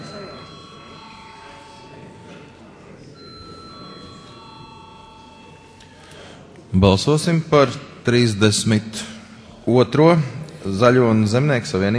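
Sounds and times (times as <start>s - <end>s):
bell ringing in a parliamentary chamber to call a vote: 0.0s - 2.5s, 3.2s - 6.3s
speech: 6.8s - 11.9s.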